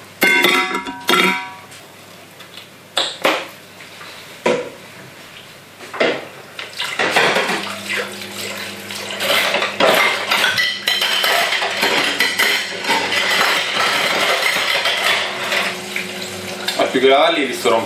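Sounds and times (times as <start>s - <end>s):
plates and cutlery clinking and clattering while washed by hand: 0.2s - 1.7s, 6.8s - 15.8s
running tap water: 6.7s - 17.8s
speech: 17.3s - 17.8s.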